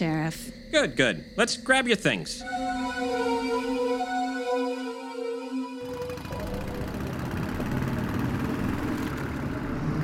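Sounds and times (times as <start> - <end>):
speech: 0.0 - 2.8
droning engine tone: 2.4 - 10.0
motorcycle engine rumbling behind a car: 5.8 - 10.0.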